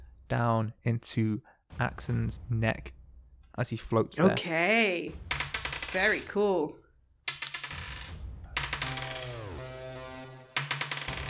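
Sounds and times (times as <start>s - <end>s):
speech: 0.3s - 3.0s, 3.6s - 5.3s, 5.9s - 6.8s
dice rattling across a hard tabletop: 5.3s - 6.3s, 7.3s - 9.4s, 10.6s - 11.2s.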